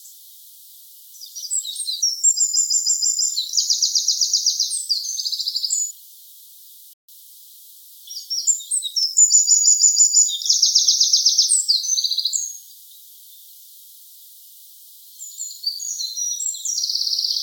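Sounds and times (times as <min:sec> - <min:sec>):
wren Troglodytes troglodytes calling: 0:01.1 - 0:06.8, 0:08.0 - 0:13.6, 0:15.2 - 0:17.4.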